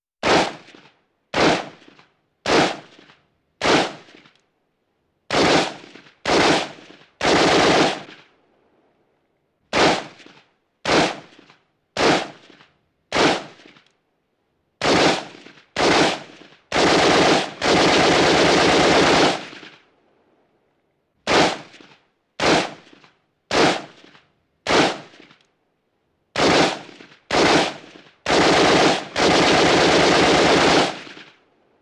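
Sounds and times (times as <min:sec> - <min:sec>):
burst gunfire: 0:00.2 - 0:04.3, 0:05.3 - 0:08.3, 0:09.7 - 0:13.8, 0:14.8 - 0:19.9, 0:21.2 - 0:25.4, 0:26.3 - 0:31.4
semi-automatic gunshots: 0:00.2 - 0:04.3, 0:05.3 - 0:08.3, 0:09.7 - 0:13.8, 0:14.8 - 0:19.9, 0:21.2 - 0:25.4, 0:26.3 - 0:31.4.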